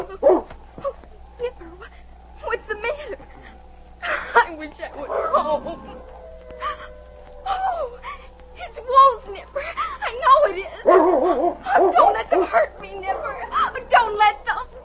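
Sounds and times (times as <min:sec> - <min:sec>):
low steady hum: 0:00.0 - 0:14.8
dog barking and yipping: 0:05.0 - 0:06.8, 0:10.2 - 0:14.8.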